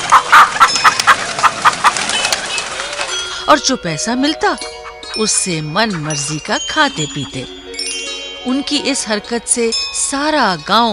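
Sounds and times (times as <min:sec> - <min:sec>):
village chickens clucking: 0:00.0 - 0:03.5, 0:04.4 - 0:07.6
speech: 0:03.5 - 0:07.6, 0:08.4 - 0:10.9.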